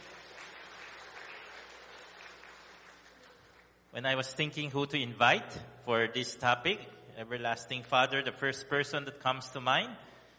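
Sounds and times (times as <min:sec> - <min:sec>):
crowd applauding: 0:00.0 - 0:03.9
speech: 0:03.9 - 0:10.1.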